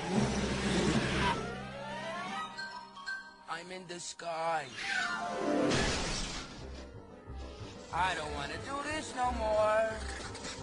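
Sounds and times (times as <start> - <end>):
small clown car engine revving loudly: 0.0 - 1.6
speech: 3.6 - 6.1, 7.9 - 10.2.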